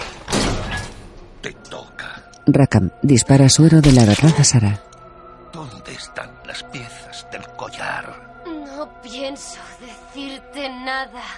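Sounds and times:
trapdoor springing open under a thug's feet in an animated adventure film: 0.0s - 1.1s
speech: 1.4s - 4.9s, 7.8s - 11.3s.

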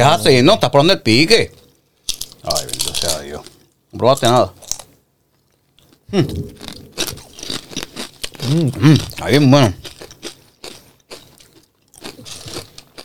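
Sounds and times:
speech: 0.0s - 1.6s, 2.4s - 3.1s, 4.0s - 4.6s, 6.1s - 6.7s, 8.4s - 10.0s
crunching on nacho chips: 2.0s - 3.8s, 4.6s - 5.0s, 5.8s - 13.0s
person humming while chewing: 6.1s - 6.4s, 8.4s - 9.0s.

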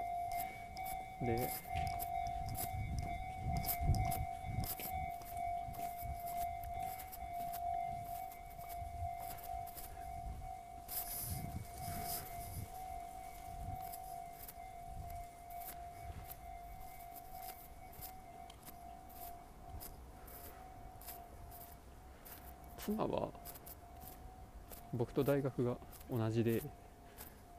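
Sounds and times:
railway crossing warning bell ringing beside a busy road: 0.0s - 27.5s
rumbling traffic noise: 0.0s - 27.5s
speech: 1.2s - 2.1s, 25.0s - 26.8s.

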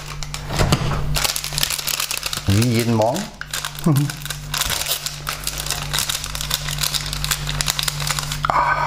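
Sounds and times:
packaging of coffee pads crinkling: 0.0s - 8.5s
noisy refrigerator humming: 0.0s - 8.8s
speech: 2.5s - 4.2s.

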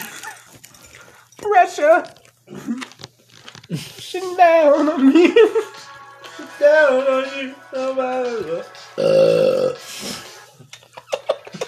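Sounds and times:
speech: 1.7s - 2.8s, 3.7s - 5.7s, 6.6s - 9.8s
loud drawn-out belch: 9.0s - 9.8s.

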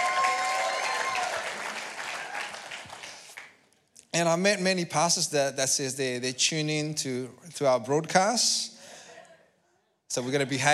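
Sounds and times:
audience applause: 0.0s - 3.5s
speech: 4.2s - 8.7s, 10.1s - 10.7s.

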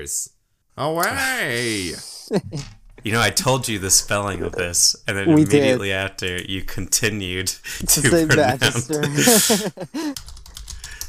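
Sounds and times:
speech: 0.0s - 10.4s
laughter: 7.7s - 10.2s
typing on a computer keyboard: 10.2s - 11.0s.

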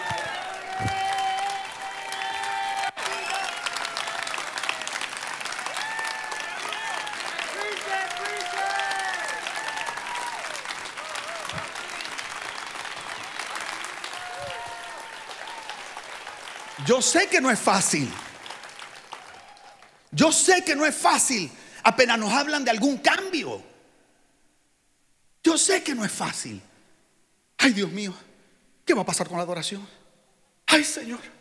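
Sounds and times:
audience cheers and shouts: 0.0s - 20.1s
audience clapping: 0.0s - 21.5s
speech: 16.9s - 18.2s, 20.2s - 23.7s, 25.6s - 26.7s, 27.6s - 28.3s, 28.9s - 30.0s, 30.7s - 31.3s.

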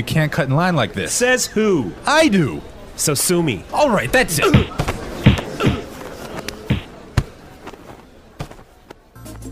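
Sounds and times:
speech: 0.0s - 4.9s
punches landing in a fight between men: 4.4s - 9.0s.

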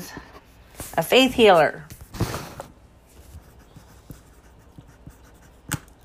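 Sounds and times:
speech: 1.0s - 1.9s
pencil with the wrong lead scratching across paper in short strokes: 3.2s - 5.9s
pencil lead snapping: 5.6s - 6.0s.

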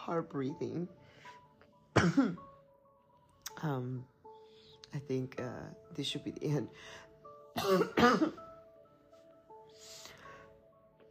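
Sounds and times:
speech: 0.1s - 1.4s, 2.0s - 2.5s, 3.6s - 4.1s, 4.9s - 8.5s
person coughing with a lingering cough: 1.9s - 2.5s, 7.6s - 8.4s.

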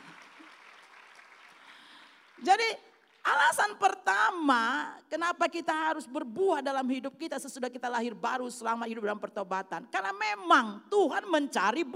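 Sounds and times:
congregation applauding: 0.0s - 3.4s
speech: 2.4s - 11.9s.

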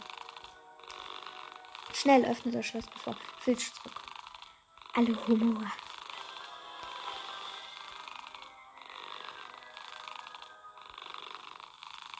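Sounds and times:
cat purring: 0.0s - 12.1s
speech: 2.0s - 4.0s, 5.0s - 5.8s.

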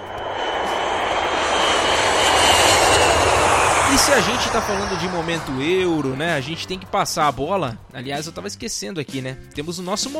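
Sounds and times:
airplane engine roaring: 0.0s - 8.9s
speech: 4.0s - 10.1s.

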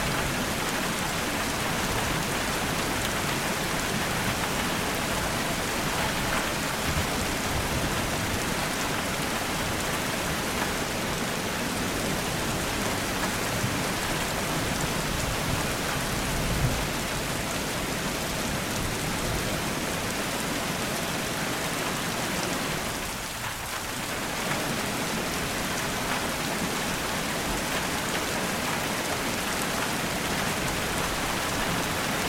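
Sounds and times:
dense rain pattering on a surface: 0.0s - 32.2s.

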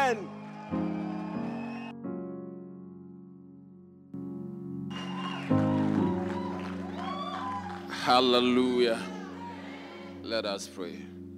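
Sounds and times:
church audience shouting in welcome: 0.0s - 1.8s, 4.9s - 10.3s
standing audience clapping to welcome a bishop: 0.0s - 1.9s, 4.9s - 10.2s
organ-like music at a church service: 0.0s - 11.3s
speech: 0.1s - 0.9s, 8.0s - 9.1s, 10.3s - 11.1s.

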